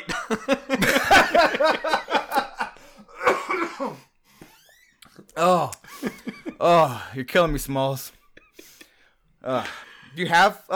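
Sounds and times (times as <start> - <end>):
laughter: 0.0 - 3.6, 5.8 - 7.1
person with a cold coughing harshly: 3.2 - 4.1
speech: 6.6 - 8.2, 9.5 - 10.7.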